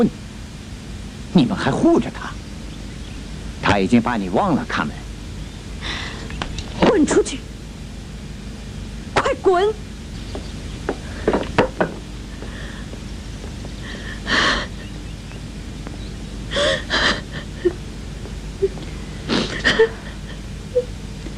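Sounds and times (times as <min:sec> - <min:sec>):
speech: 0:00.0 - 0:00.3, 0:01.3 - 0:02.4, 0:03.6 - 0:05.0, 0:06.9 - 0:07.5, 0:09.4 - 0:10.5
faint knocks: 0:10.3 - 0:13.8
woman sobbing: 0:13.8 - 0:15.1, 0:16.5 - 0:17.8, 0:18.6 - 0:20.9.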